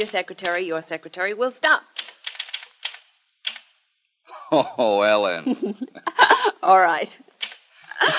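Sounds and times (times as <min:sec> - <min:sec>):
typewriter key strikes: 0:00.0 - 0:00.7, 0:02.0 - 0:03.7
speech: 0:00.0 - 0:02.1, 0:04.5 - 0:07.3, 0:08.0 - 0:08.1
laughter: 0:04.3 - 0:06.7, 0:07.9 - 0:08.1.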